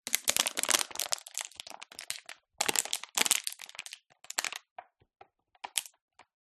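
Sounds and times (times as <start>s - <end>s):
empty plastic bottle being crushed: 0.1s - 4.8s, 5.6s - 5.9s.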